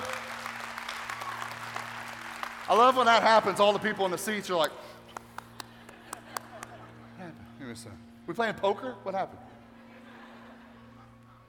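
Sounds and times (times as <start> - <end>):
audience cheering: 0.0 - 3.8
audience applauding: 0.0 - 4.3, 5.0 - 7.0
speech: 2.7 - 5.0, 7.7 - 9.5
laughter: 5.6 - 7.4, 9.5 - 11.4.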